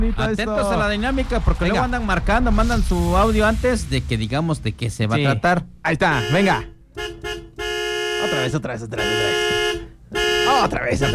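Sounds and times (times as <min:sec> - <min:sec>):
speech: 0:00.1 - 0:06.7, 0:08.3 - 0:09.6, 0:10.6 - 0:11.1
car horn blaring: 0:06.0 - 0:11.1.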